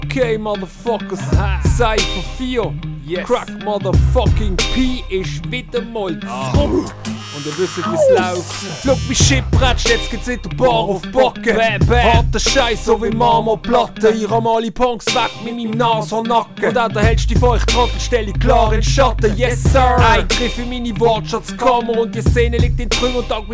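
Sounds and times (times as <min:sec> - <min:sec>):
speech: 0:00.2 - 0:23.5
loud blaring emergency siren wailing: 0:07.8 - 0:08.8.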